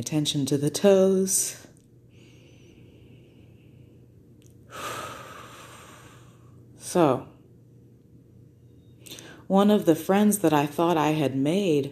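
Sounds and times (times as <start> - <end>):
speech: 0.0 - 1.7, 6.9 - 7.3, 9.5 - 11.8
deep breath: 2.1 - 6.7.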